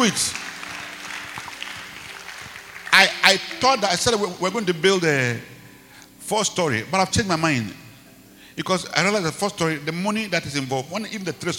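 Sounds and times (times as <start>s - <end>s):
speech: 0.0s - 0.4s, 3.3s - 5.6s, 6.3s - 7.8s, 8.6s - 11.5s
audience clapping: 0.0s - 4.2s.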